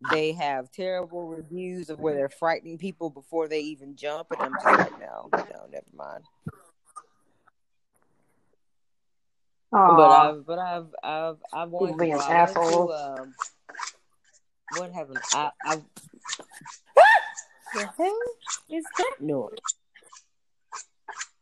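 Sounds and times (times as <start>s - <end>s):
speech: 0.1s - 6.6s, 9.7s - 14.0s, 14.7s - 19.8s
dog whining and giving short high yelps: 16.4s - 18.6s
sudden loud outburst: 17.0s - 17.5s
excited human voices: 17.0s - 19.2s.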